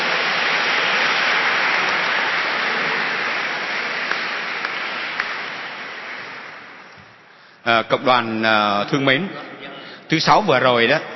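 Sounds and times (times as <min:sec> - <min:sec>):
church audience applauding the choir: 0:00.0 - 0:07.6
speech: 0:07.7 - 0:09.5, 0:10.1 - 0:11.1.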